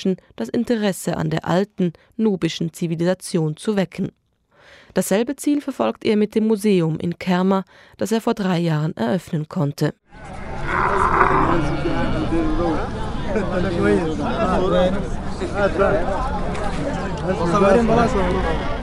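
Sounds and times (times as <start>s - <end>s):
speech: 0.0s - 18.8s
camels roaring and groaning at an outdoor camel market: 10.1s - 13.1s
murmur of many voices at a camel market: 10.1s - 18.8s.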